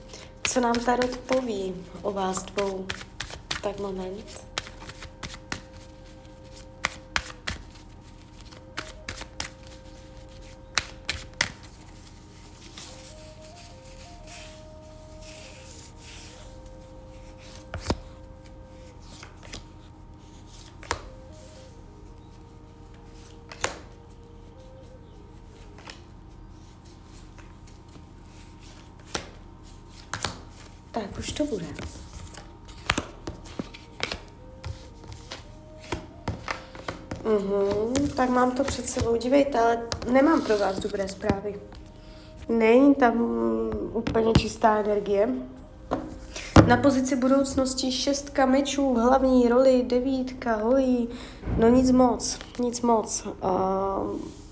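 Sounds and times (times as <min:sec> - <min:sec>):
playing cards being shuffled: 0:00.0 - 0:21.7, 0:22.9 - 0:24.8, 0:25.4 - 0:39.3, 0:39.9 - 0:42.5
faint tonal hum: 0:00.0 - 0:54.5
speech: 0:00.5 - 0:04.5, 0:38.7 - 0:41.8, 0:42.5 - 0:45.6, 0:46.7 - 0:54.4.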